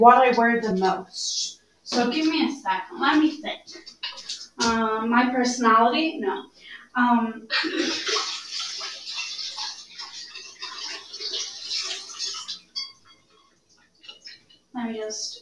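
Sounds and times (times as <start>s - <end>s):
speech: 0.0s - 8.4s, 14.8s - 15.3s
water dripping: 0.2s - 6.8s, 7.5s - 15.3s
tap water running over apples being rinsed: 1.9s - 5.3s, 7.5s - 14.7s.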